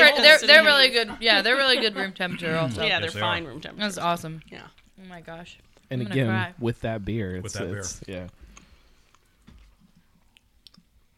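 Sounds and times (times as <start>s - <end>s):
speech: 0.2s - 8.4s
people chewing food: 2.2s - 6.0s, 8.0s - 11.1s
soft mouth clicks and smacks: 8.5s - 11.1s.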